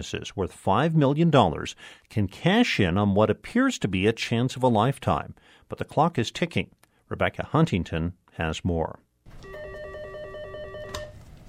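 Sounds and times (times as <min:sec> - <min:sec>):
speech: 0:00.0 - 0:09.0
telephone ringing in a law firm office: 0:09.4 - 0:11.2.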